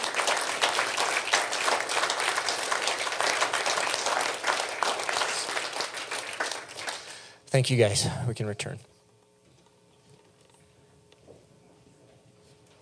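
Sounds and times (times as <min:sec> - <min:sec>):
crowd applauding: 0:00.0 - 0:07.4
speech: 0:07.6 - 0:09.0.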